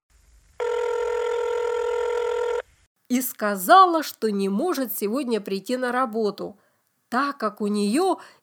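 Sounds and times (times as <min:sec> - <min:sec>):
loud steady continuous telephone tone: 0:00.6 - 0:02.6
speech: 0:03.1 - 0:08.4.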